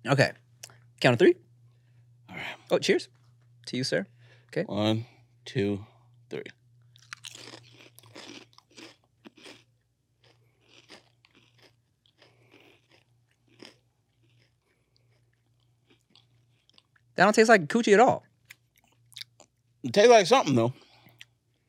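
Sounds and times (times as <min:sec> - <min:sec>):
speech: 0:00.0 - 0:00.4, 0:01.0 - 0:01.4, 0:02.3 - 0:06.6, 0:17.2 - 0:18.3, 0:19.8 - 0:20.8
potato chips crunched while chewing: 0:06.9 - 0:17.1, 0:18.4 - 0:19.5.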